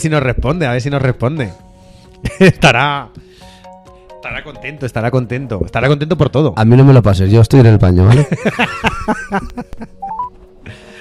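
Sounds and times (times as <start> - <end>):
speech: 0.0 - 1.6, 2.2 - 3.4, 4.2 - 10.0
laughter: 2.2 - 2.7, 8.1 - 10.0
short electronic telephone keypad dialing tones: 10.0 - 10.4.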